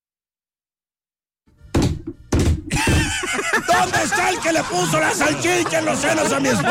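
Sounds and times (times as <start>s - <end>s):
door opening with heavy clunks and thuds: 1.7s - 3.3s
laughter: 2.7s - 6.6s
speech: 3.8s - 6.6s.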